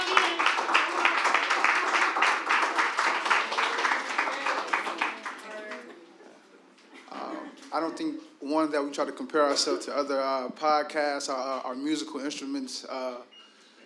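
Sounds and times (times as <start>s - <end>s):
small group applauding: 0.0s - 6.3s
speech: 7.8s - 13.3s.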